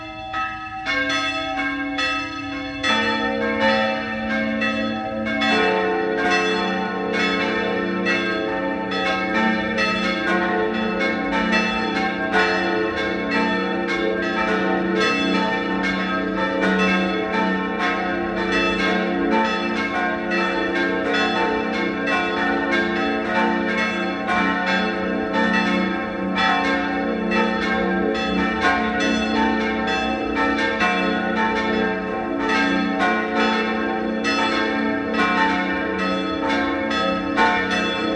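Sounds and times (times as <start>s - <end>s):
parish church bells ringing at noon: 0.0s - 38.1s.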